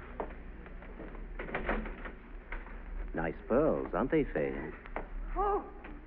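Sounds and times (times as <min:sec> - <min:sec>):
door shutting with a dull thud: 0:01.0 - 0:02.7
speech: 0:03.5 - 0:05.5.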